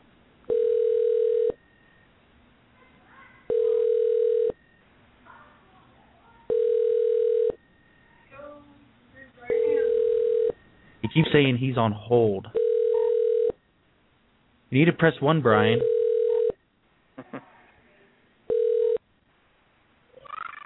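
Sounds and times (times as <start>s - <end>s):
telephone ringing tone on an outgoing call: 0.5s - 1.9s, 3.5s - 4.8s, 6.5s - 7.9s, 9.5s - 10.7s, 12.6s - 13.6s, 15.6s - 16.6s, 18.5s - 19.0s
speech: 11.2s - 12.6s, 14.7s - 16.0s.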